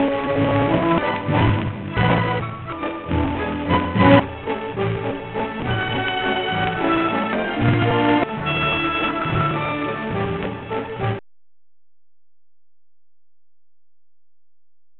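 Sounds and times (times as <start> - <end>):
classical music with digital distortion: 0.0 - 11.2.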